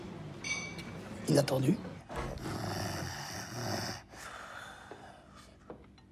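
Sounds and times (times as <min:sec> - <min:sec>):
speech: 0:01.3 - 0:01.9
heavy rasping snore of a drunk person asleep: 0:02.3 - 0:04.3.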